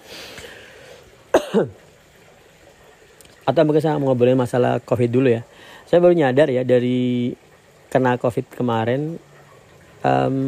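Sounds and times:
faint hiss: 0.0s - 10.4s
coughing: 1.3s - 1.8s
speech: 1.5s - 1.8s, 3.5s - 9.3s, 10.0s - 10.4s.

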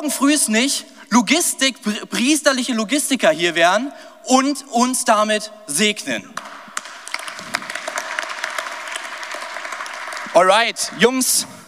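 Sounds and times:
speech: 0.0s - 6.5s, 10.4s - 11.6s
crowd applauding at a church service: 6.4s - 11.0s.

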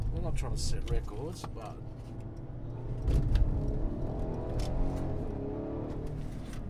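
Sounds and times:
speech: 0.2s - 2.2s, 3.0s - 3.5s
car engine accelerating in Sport Plus mode on run-flat tyres: 2.1s - 6.6s.

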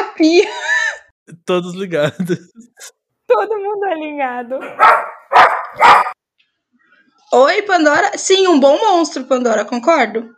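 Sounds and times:
speech: 0.2s - 0.7s, 1.5s - 5.1s, 7.3s - 10.3s
dog barking angrily: 4.6s - 6.2s.

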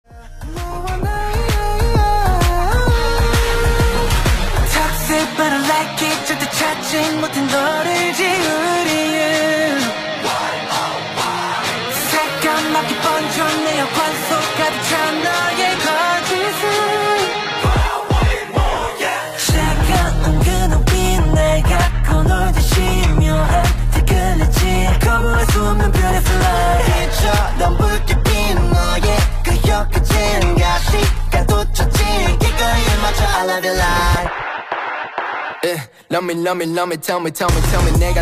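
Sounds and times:
K-pop song with sung vocals, dense driving instrumentation and heavy bass: 0.0s - 38.2s.

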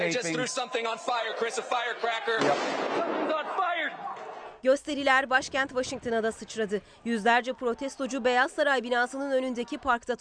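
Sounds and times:
crowd of voices at anti-racism protests: 0.0s - 4.6s, 5.6s - 10.1s
speech: 0.0s - 10.1s
fireworks exploding at a police-guarded building during protests: 2.4s - 3.2s.

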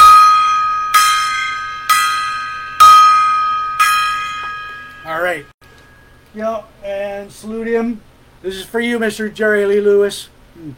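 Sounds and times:
gong struck with bright metallic tone: 0.0s - 5.1s
speech: 6.6s - 10.7s.

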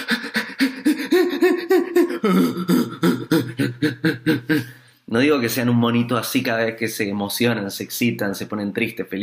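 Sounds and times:
person imitating quick shallow chest panting: 0.0s - 5.0s
speech: 2.2s - 3.0s, 3.8s - 9.2s.

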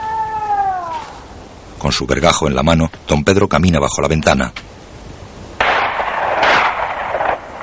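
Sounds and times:
speech: 1.8s - 4.7s
gunshot from hunters: 5.6s - 7.6s.

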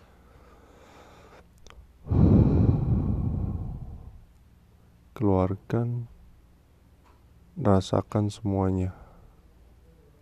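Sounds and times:
deep slow breath drawn in and let out: 0.0s - 1.4s, 2.0s - 4.3s
speech: 5.2s - 6.2s, 7.6s - 9.0s.

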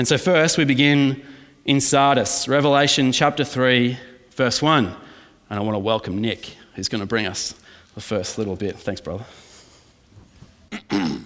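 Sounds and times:
speech: 0.0s - 9.4s, 10.7s - 11.2s
person clearing throat with scratchy rasping bursts: 10.7s - 11.2s.

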